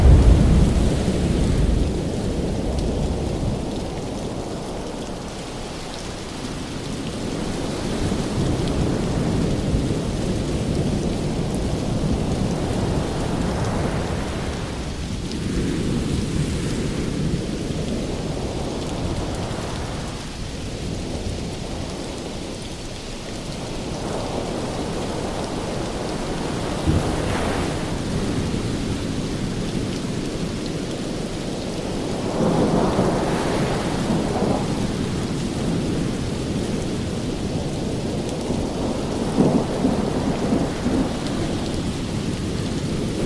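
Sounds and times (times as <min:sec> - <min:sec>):
steady rain hissing: 0:00.0 - 0:43.2.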